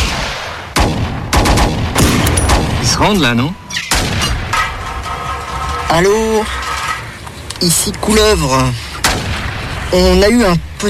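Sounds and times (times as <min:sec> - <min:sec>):
gunshots in a shooting at police: 0:00.0 - 0:06.0, 0:08.9 - 0:10.5
steady noise: 0:00.0 - 0:10.8
speech: 0:03.0 - 0:03.8, 0:05.9 - 0:06.6, 0:07.6 - 0:08.9, 0:09.9 - 0:10.8.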